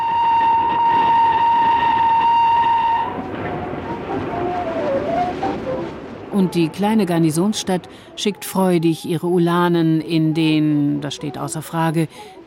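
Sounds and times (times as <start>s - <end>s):
steam train whistle: 0.0s - 5.8s
passing steam train rushing rumble: 0.0s - 10.0s
speech: 6.4s - 12.4s.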